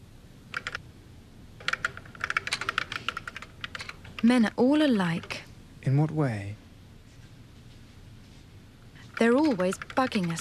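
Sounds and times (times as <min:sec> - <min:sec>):
typing on a computer keyboard: 0:00.5 - 0:00.8, 0:01.6 - 0:04.4, 0:09.0 - 0:10.4
speech: 0:04.2 - 0:06.6, 0:09.2 - 0:10.4.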